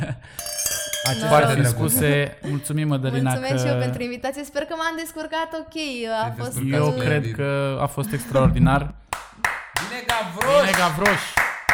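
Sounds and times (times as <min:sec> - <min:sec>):
glasses clinking together in a toast: 0:00.3 - 0:03.5
speech: 0:01.1 - 0:09.0, 0:09.9 - 0:11.4.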